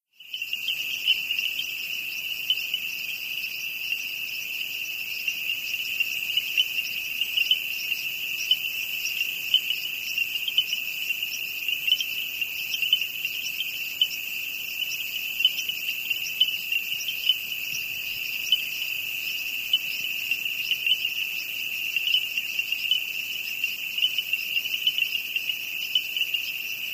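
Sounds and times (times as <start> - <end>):
peeper frogs: 0.0 - 26.9.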